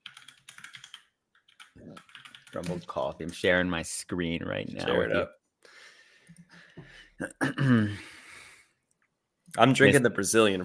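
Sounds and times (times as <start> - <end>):
rapid computer keyboard typing: 0.0 - 3.5
speech: 1.8 - 5.4, 7.2 - 8.1, 9.6 - 10.6.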